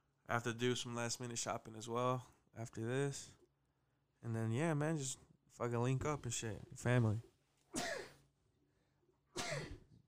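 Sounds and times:
speech: 0.3s - 3.4s, 4.2s - 7.8s
person sneezing: 7.7s - 8.2s, 9.4s - 9.9s.

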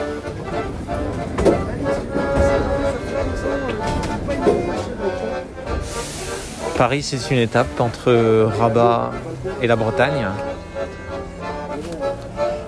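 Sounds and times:
accordion playing aboard metro train: 0.0s - 12.6s
moving metro train rattling and hissing: 0.0s - 12.6s
speech: 6.8s - 10.5s.

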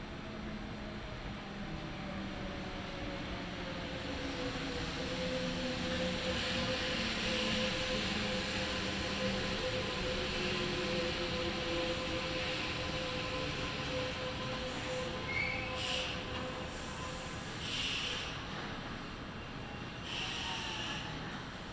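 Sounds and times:
local train wheels rumbling on track: 0.2s - 21.6s.

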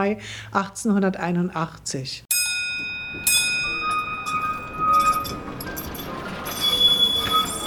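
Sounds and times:
speech: 0.0s - 3.4s
clinks of an early electric tram: 2.3s - 7.6s
early electric tram rolling along rails between Lichterfelde Ost station and the cadet academy: 2.8s - 7.6s
high metallic wheel squeal of an early electric tram: 3.2s - 7.6s.

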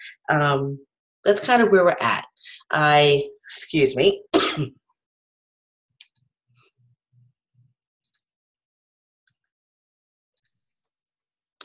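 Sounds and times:
speech: 0.0s - 4.8s
person coughing: 4.3s - 4.7s.

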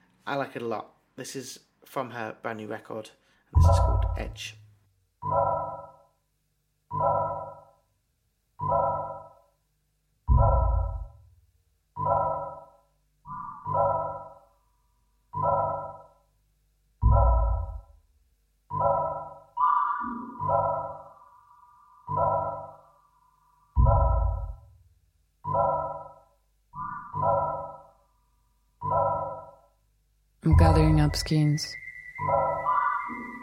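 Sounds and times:
speech: 0.3s - 4.6s, 31.1s - 32.4s
regular pinging synth pulses in sparse electronic music: 3.6s - 4.4s, 5.2s - 6.1s, 6.9s - 7.8s, 8.6s - 9.4s, 12.0s - 14.6s, 15.4s - 16.3s, 18.7s - 24.6s, 25.4s - 28.1s, 28.8s - 29.7s, 30.5s - 33.4s
deep low thuds: 3.6s - 4.7s, 10.3s - 11.3s, 17.0s - 17.9s, 23.8s - 24.8s, 30.5s - 31.3s
brief gliding tone: 31.7s - 33.4s.

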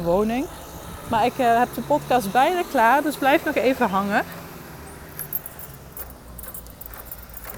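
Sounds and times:
speech: 0.0s - 4.4s
steady low outdoor rumble of traffic: 0.0s - 7.5s
keys jingling while unlocking a front door: 5.1s - 7.5s.

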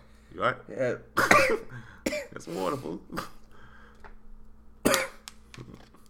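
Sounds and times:
speech: 0.4s - 3.4s
person coughing raspily: 1.2s - 3.5s, 4.9s - 5.2s.

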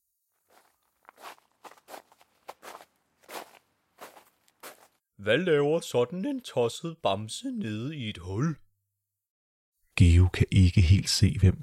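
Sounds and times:
footsteps walking in sand: 0.4s - 5.0s
speech: 5.2s - 8.6s, 10.0s - 11.6s.

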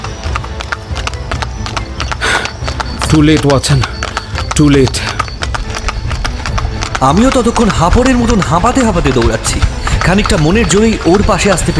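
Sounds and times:
hoofbeats of a horse pulling a two-wheeled carriage at speed: 0.0s - 11.7s
speech: 3.1s - 4.0s, 4.6s - 5.2s, 7.0s - 11.7s.

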